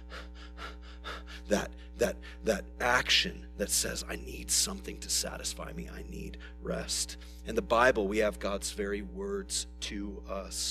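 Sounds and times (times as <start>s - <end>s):
voice imitating a deer panting: 0.0s - 1.6s
speech: 1.5s - 10.6s.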